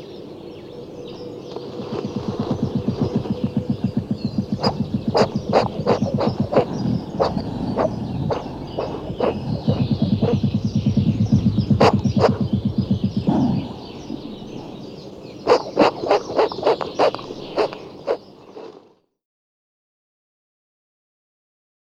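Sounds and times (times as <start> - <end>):
western European hedgehog huffing during mating: 2.0 - 14.8, 15.5 - 18.2.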